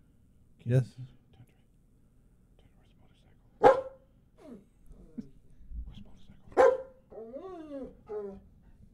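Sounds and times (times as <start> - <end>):
speech: 0.6 - 1.2
dog barking: 3.6 - 4.1, 6.5 - 7.0
dog whining and yipping: 7.1 - 8.5.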